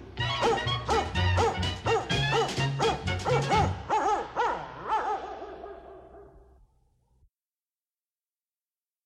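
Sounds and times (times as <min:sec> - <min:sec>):
German Shepherd dog barking sharply: 0:00.3 - 0:06.5.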